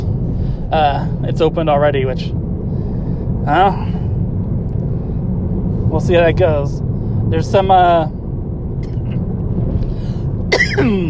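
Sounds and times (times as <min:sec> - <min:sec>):
low rumble: 0:00.0 - 0:11.0
speech: 0:00.7 - 0:02.4, 0:03.4 - 0:03.9, 0:05.9 - 0:08.2, 0:10.8 - 0:11.0
person coughing with irritated lungs: 0:10.5 - 0:11.0.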